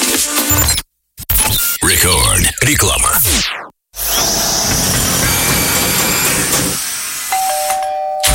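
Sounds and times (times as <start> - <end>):
speech: 0.5 - 0.8, 1.9 - 3.2
power drill hammering into a wall during renovation: 4.0 - 8.3
two-tone doorbell chime: 7.3 - 8.3.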